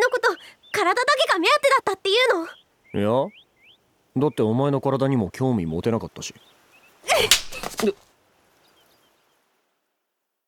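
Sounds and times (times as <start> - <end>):
speech: 0.8 - 3.4, 4.2 - 8.0
slap across the face: 7.2 - 7.9.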